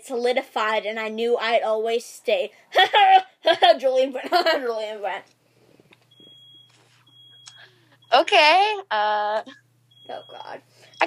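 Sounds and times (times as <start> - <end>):
speech: 0.0 - 5.4, 8.1 - 11.0
steady low hum: 0.0 - 11.0
home smoke alarm beeping, set off by cooking in the oven: 6.1 - 8.3, 9.9 - 11.0.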